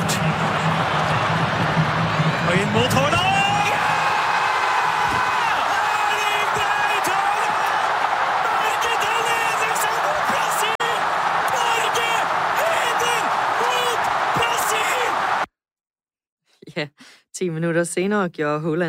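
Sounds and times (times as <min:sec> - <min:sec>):
huge stadium crowd roaring and cheering a goal: 0:00.0 - 0:15.5
commentators shouting excitedly: 0:02.4 - 0:15.5
speech: 0:17.4 - 0:18.8.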